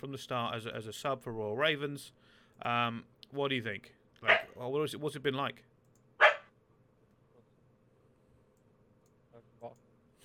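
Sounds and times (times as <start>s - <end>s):
speech: 0.0s - 5.7s
dog barking: 4.2s - 4.5s, 6.2s - 6.5s.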